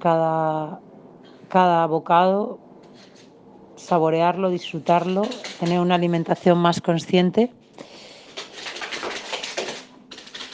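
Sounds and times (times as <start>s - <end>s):
speech: 0.0s - 0.9s, 1.5s - 7.9s
dog and cat scrabbling and scampering on a hard floor: 4.8s - 6.5s, 8.0s - 10.5s.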